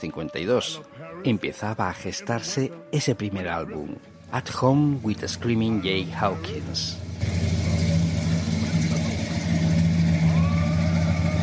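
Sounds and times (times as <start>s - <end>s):
speech: 0.0s - 7.6s
car engine idling and revving: 4.9s - 11.4s.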